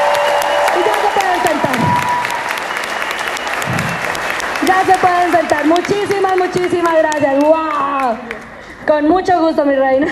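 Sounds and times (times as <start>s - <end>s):
faint cheers: 0.0s - 4.5s
crowd applause: 0.0s - 8.8s
speech: 5.8s - 10.0s.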